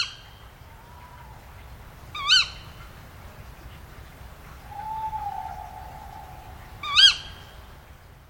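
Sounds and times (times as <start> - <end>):
soft background hiss: 0.0 - 8.2
tawny owl giving sharp shrill calls: 4.6 - 7.7.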